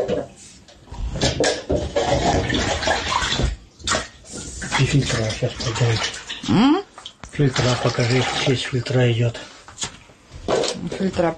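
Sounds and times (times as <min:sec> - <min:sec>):
brown water gushing from a tap in Yakutsk: 0:01.2 - 0:09.5
speech: 0:04.9 - 0:09.5, 0:10.9 - 0:11.3.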